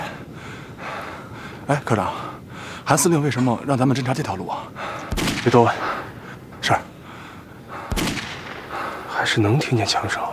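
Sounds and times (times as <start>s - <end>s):
people talking quietly: 1.0s - 10.3s
speech: 1.7s - 2.3s, 2.9s - 5.9s, 6.6s - 7.0s, 9.2s - 10.3s
booming gunshots: 5.0s - 6.1s, 7.8s - 9.1s.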